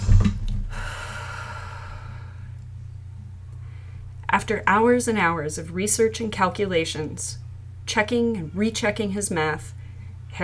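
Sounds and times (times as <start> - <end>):
deep breath: 0.6 - 2.6
speech: 4.5 - 10.4.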